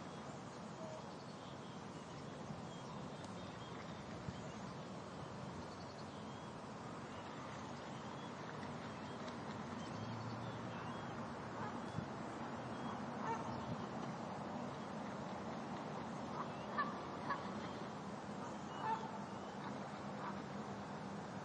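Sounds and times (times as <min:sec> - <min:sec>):
steady outdoor hum: 0:00.0 - 0:21.4
geese honking on grass: 0:13.2 - 0:13.5.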